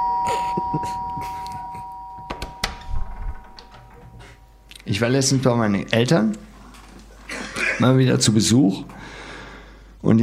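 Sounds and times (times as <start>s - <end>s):
doorbell ringing with a sustained electronic tone: 0.0s - 4.7s
speech: 0.6s - 1.4s, 4.9s - 6.5s, 7.8s - 8.9s, 10.0s - 10.2s.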